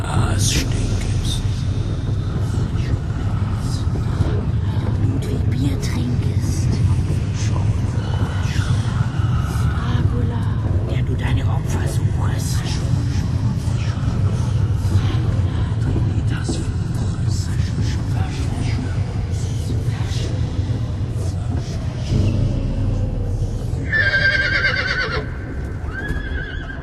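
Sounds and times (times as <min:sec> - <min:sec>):
heavy rumble: 0:00.0 - 0:26.8
clattering hooves: 0:00.1 - 0:26.8
two black shying coach horses neighing near an old cathedral in the early morning: 0:23.8 - 0:26.8.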